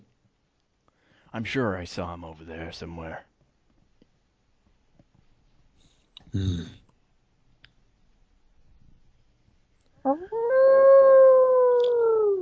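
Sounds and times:
speech: 0:01.3 - 0:03.3, 0:06.3 - 0:06.8
wolf howling: 0:10.1 - 0:12.4.

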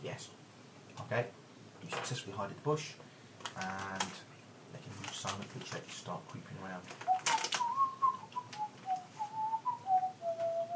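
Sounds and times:
speech: 0:00.1 - 0:00.4, 0:01.0 - 0:07.3
person whistling a wandering tuneless melody: 0:07.1 - 0:10.7.

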